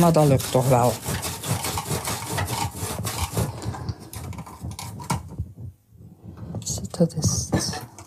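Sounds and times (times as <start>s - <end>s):
speech: 0.0s - 1.2s, 7.0s - 7.8s
knife cutting through hard fennel: 0.0s - 3.6s.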